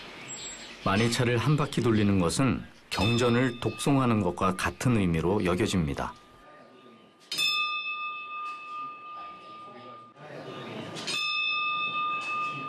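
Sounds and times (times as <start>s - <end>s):
speech: 0.8s - 6.2s
bell ringing at a temple entrance: 2.9s - 12.6s
murmur of people talking: 9.0s - 12.6s.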